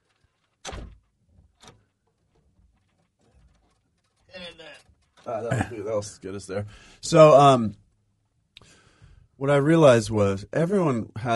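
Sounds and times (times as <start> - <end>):
studio door pushed shut with a loud thud: 0.6 - 1.8
speech: 4.5 - 7.8, 9.4 - 11.3.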